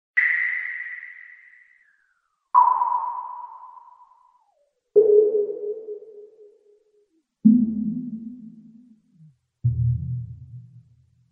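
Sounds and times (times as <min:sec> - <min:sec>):
weird sonar sound: 0:00.2 - 0:09.0.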